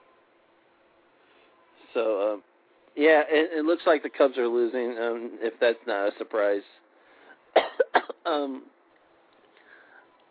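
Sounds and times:
speech: 2.0s - 6.8s, 8.3s - 8.7s
person coughing: 7.6s - 8.6s.

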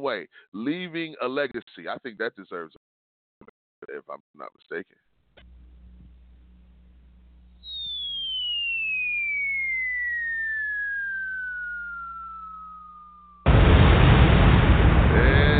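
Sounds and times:
speech: 0.0s - 5.5s
falling-bomb whistle sound effect: 7.6s - 14.2s
loud explosion blast: 13.4s - 15.5s.

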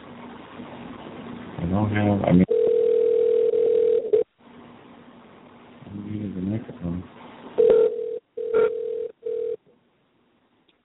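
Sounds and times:
speech: 1.8s - 2.5s
telephone dial tone after a hung-up call: 2.5s - 4.2s, 7.6s - 9.6s.

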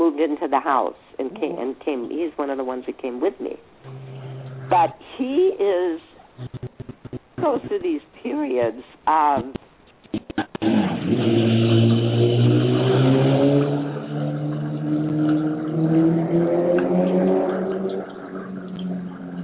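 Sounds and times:
speech: 0.0s - 4.1s, 4.7s - 6.6s, 7.4s - 9.6s
loud car engine roaring past: 3.8s - 4.9s, 10.6s - 19.4s
sharp clicks: 6.4s - 8.0s, 9.4s - 10.7s.

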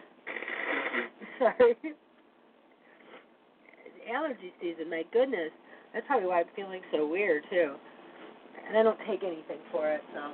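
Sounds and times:
nose blowing during allergy season: 0.2s - 1.4s
speech: 1.4s - 2.0s, 4.1s - 7.9s, 8.6s - 10.3s.

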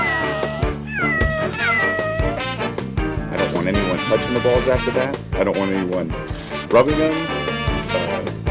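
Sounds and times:
cat meowing: 0.0s - 2.6s
speech: 3.6s - 8.4s.

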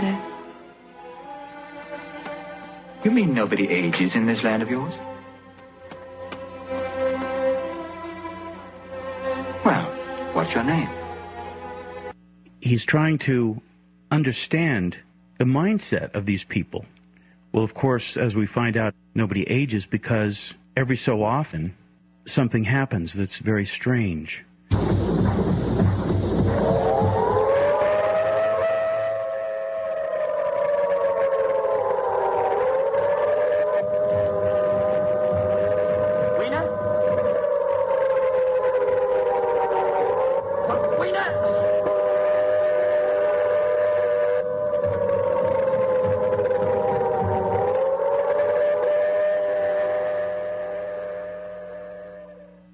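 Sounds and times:
air raid sirens wailing: 0.0s - 12.2s, 24.7s - 52.7s
speech: 3.0s - 5.1s, 12.7s - 25.1s.

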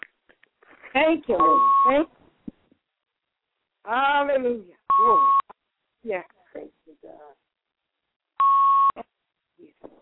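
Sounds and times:
speech: 1.0s - 2.2s, 3.9s - 5.4s, 6.0s - 7.4s
single loud electronic beep from a phone: 1.4s - 2.1s, 4.9s - 5.5s, 8.4s - 9.0s.

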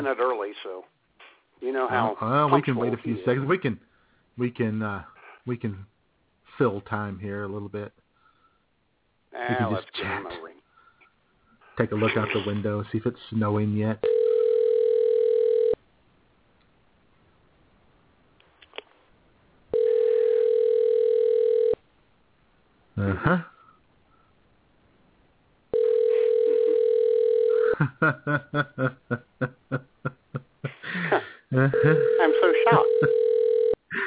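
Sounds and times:
speech: 0.0s - 1.0s, 1.6s - 5.9s, 6.6s - 8.0s, 9.3s - 10.5s, 11.8s - 14.2s, 23.0s - 23.5s, 27.8s - 33.2s
ringback tone of an outgoing phone call: 14.0s - 15.8s, 19.7s - 21.8s, 25.7s - 27.8s, 31.7s - 33.8s
laughter: 23.0s - 23.5s, 27.6s - 33.2s.

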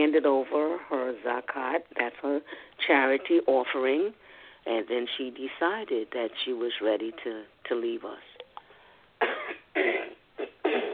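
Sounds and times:
speech: 0.0s - 8.3s
person losing their voice clearing throat: 9.2s - 10.9s.

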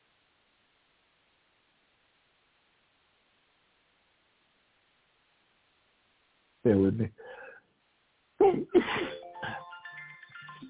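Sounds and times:
speech: 6.6s - 7.3s
loud sneeze with gasping intake: 8.4s - 9.6s.

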